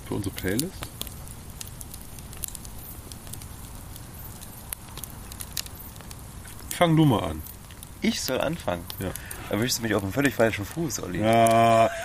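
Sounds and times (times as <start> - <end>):
campfire crackling with sharp pops and snaps: 0.0 - 12.0
speech: 0.1 - 1.0, 6.8 - 12.0
laughter: 11.5 - 12.0.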